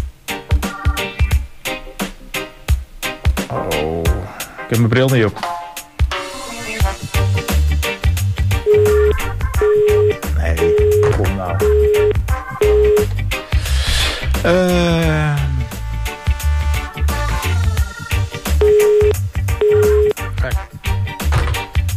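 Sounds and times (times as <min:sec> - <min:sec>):
loud busy music bed with a steady beat: 0:00.0 - 0:04.3, 0:05.4 - 0:21.9
speech: 0:04.7 - 0:05.6
phone keypad beeps from dialing: 0:08.7 - 0:13.1, 0:18.6 - 0:20.1.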